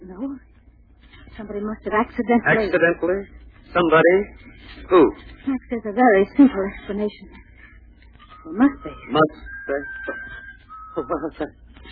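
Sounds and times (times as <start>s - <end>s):
speech: 1.3s - 7.4s, 8.4s - 10.4s, 11.0s - 11.9s
steady whistling tone: 8.0s - 11.9s.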